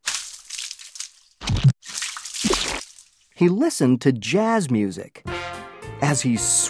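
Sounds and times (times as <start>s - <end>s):
wet paint splattering onto a big canvas on the floor: 0.0s - 3.3s
speech: 3.4s - 5.3s, 6.0s - 6.6s.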